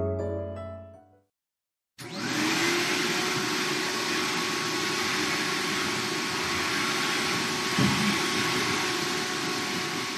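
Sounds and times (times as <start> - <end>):
vacuum cleaner roaring: 2.0 - 10.1.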